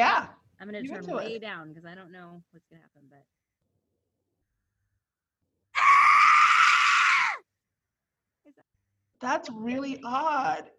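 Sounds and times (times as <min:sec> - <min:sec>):
speech: 0:00.0 - 0:03.4, 0:09.2 - 0:10.7
blood curdling human scream: 0:05.8 - 0:07.4.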